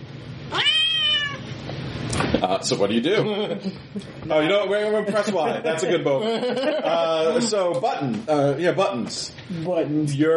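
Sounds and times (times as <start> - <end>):
cat meowing in a video game: 0.5 - 1.5
speech: 2.4 - 10.3
laughter: 3.1 - 7.9.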